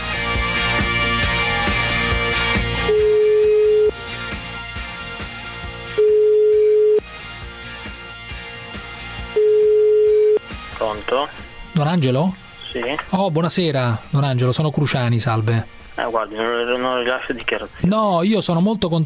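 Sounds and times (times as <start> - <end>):
music: 0.0 - 19.0
telephone ringback tones: 2.9 - 4.0, 6.0 - 7.0, 9.4 - 10.4
speech: 11.9 - 19.0.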